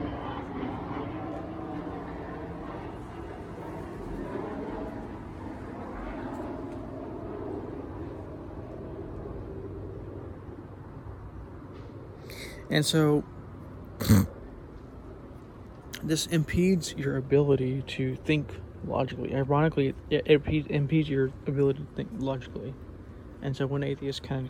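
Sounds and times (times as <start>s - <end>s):
airplane engine roar passing overhead: 0.0s - 13.2s
speech: 12.7s - 13.4s, 14.0s - 14.3s, 16.1s - 22.8s, 23.4s - 24.4s.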